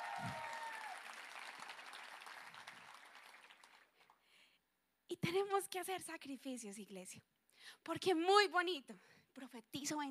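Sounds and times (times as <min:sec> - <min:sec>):
congregation applauding: 0:00.0 - 0:04.2
speech: 0:00.2 - 0:00.5, 0:05.1 - 0:10.1.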